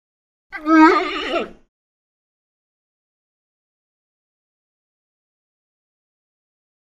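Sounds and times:
titi monkey whining call: 0:00.6 - 0:01.6.

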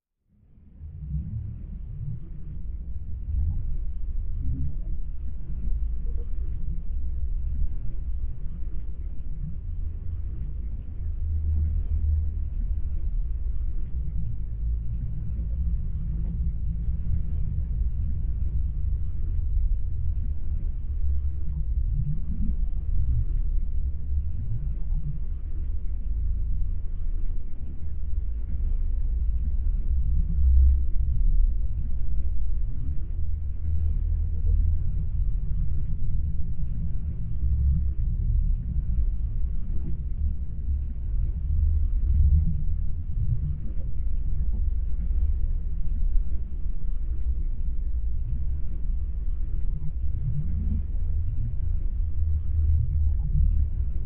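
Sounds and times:
thick underwater ambience: 0:00.2 - 0:54.0.

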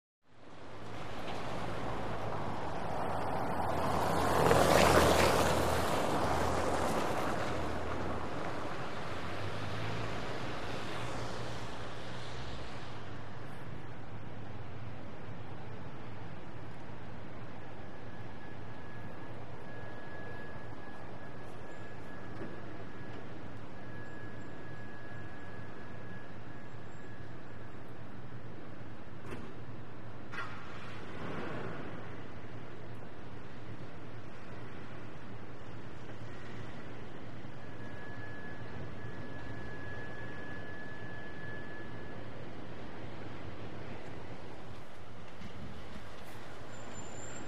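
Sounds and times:
vehicles passing on wet cobblestone street at slow to medium speed: 0:00.3 - 0:47.4
tires through puddles on cobblestones: 0:00.5 - 0:13.6, 0:30.3 - 0:41.2, 0:42.2 - 0:47.4.

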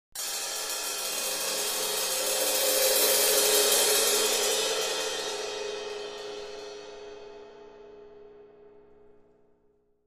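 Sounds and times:
cymbal crescendo: 0:00.2 - 0:08.2.

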